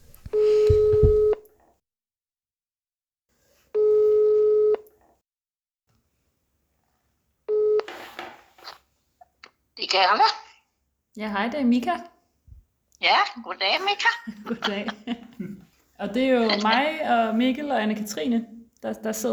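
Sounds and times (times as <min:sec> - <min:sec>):
telephone ringback tone beeps: 0:00.3 - 0:01.4, 0:03.8 - 0:04.8, 0:07.5 - 0:07.9
speech: 0:09.9 - 0:10.4, 0:11.2 - 0:12.1, 0:13.0 - 0:19.3
laughter: 0:13.8 - 0:15.8.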